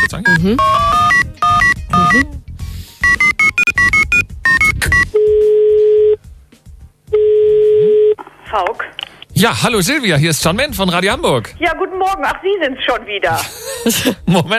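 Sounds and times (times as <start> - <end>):
telephone number being dialled with short tonal beeps: 0.0 - 2.2, 3.0 - 6.2
telephone ringback tones: 0.0 - 2.2, 3.0 - 6.2, 7.1 - 8.2
speech: 0.1 - 0.8, 2.0 - 2.4, 9.4 - 14.5.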